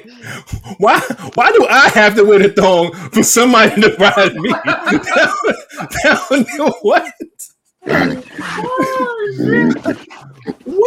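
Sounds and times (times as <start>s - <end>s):
speech: 0.2s - 10.8s
laughter: 3.2s - 7.4s, 8.1s - 10.8s
person imitating pig oinks and grunts: 7.8s - 10.8s.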